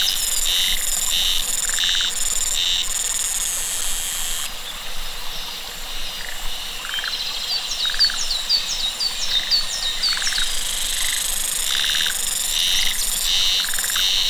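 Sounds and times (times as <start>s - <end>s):
cicada loud buzzing bursts: 0.0s - 4.7s, 9.4s - 14.2s
cicada rapid slurred chirps and short pulsed trills: 0.0s - 14.2s.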